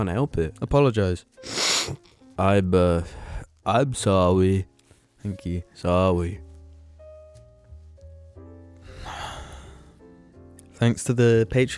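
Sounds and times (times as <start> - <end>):
speech: 0.0 - 6.4, 10.8 - 11.7
person sneezing: 1.4 - 2.0.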